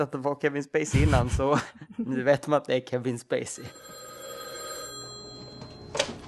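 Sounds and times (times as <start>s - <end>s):
speech: 0.0s - 4.1s
telephone ringing in a film scene: 3.6s - 6.2s.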